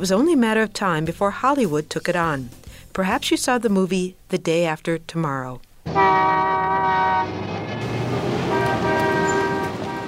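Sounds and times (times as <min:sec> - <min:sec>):
speech: 0:00.0 - 0:06.6
subway train horn-like tone: 0:05.9 - 0:10.0
subway train cars rolling clatter: 0:07.1 - 0:10.0.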